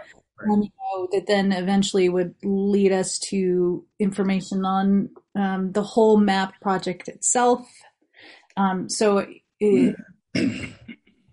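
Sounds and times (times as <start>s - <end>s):
speech: 0.1s - 10.9s
man clearing throat: 9.7s - 11.0s.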